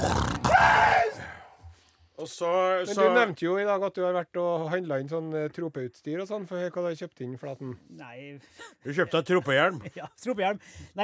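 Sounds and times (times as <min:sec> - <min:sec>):
voice imitating a howling scream: 0:00.0 - 0:01.5
speech: 0:02.2 - 0:11.0
laughter: 0:08.6 - 0:10.8.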